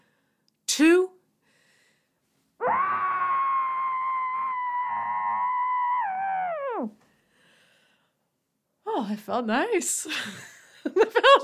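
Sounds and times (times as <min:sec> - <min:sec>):
person screaming muffled into a pillow: 0:02.6 - 0:07.0
speech: 0:09.0 - 0:10.6.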